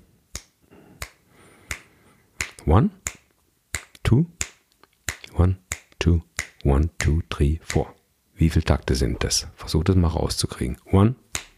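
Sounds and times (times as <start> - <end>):
crisp finger snaps counting in: 0.3 - 7.9, 11.3 - 11.5
speech: 2.6 - 3.2, 4.1 - 4.4, 5.4 - 11.4.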